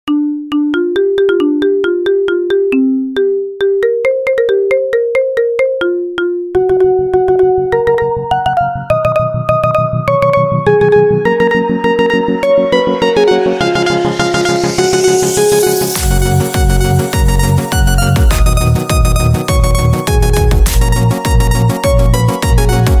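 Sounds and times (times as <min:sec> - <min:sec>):
iPhone marimba tone: 0:00.1 - 0:22.9.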